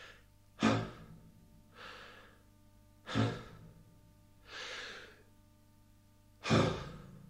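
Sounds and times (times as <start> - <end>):
deep breathing: 0.0 - 3.8, 4.4 - 5.3, 6.4 - 7.2.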